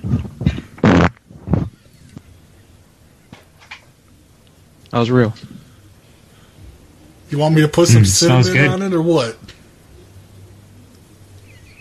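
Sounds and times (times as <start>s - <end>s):
fart: 0.0s - 1.8s
speech: 5.0s - 5.6s, 7.3s - 9.6s.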